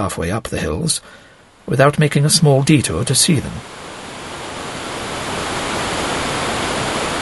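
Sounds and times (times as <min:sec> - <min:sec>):
speech: 0:00.0 - 0:03.9
roaring rush of falling water from a waterfall: 0:02.3 - 0:07.1.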